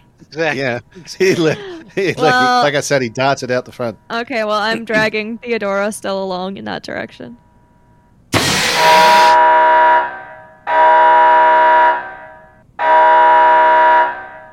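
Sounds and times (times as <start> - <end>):
laughter: 0.2 - 2.9, 4.7 - 5.2
speech: 0.3 - 7.4
fire alarm blaring: 8.4 - 14.5.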